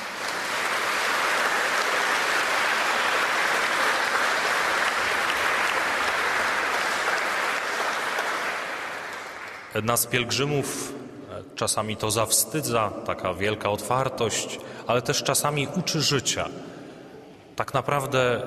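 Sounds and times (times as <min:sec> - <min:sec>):
sizable crowd applauding: 0:00.0 - 0:10.0
speech: 0:09.8 - 0:11.0, 0:11.6 - 0:16.8, 0:17.6 - 0:18.4.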